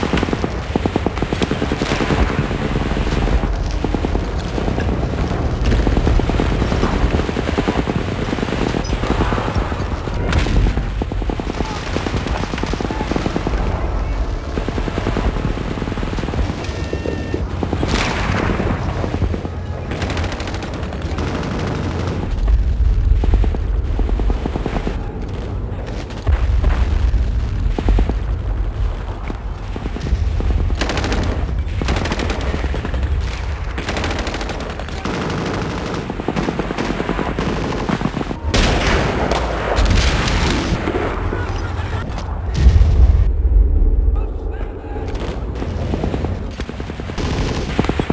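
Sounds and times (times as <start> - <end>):
battle: 0.0 - 48.1.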